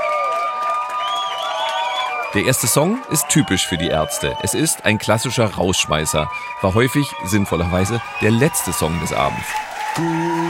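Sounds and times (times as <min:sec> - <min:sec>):
packed crowd at a small concert cheering and screaming: 0:00.0 - 0:10.4
speech: 0:02.3 - 0:10.4.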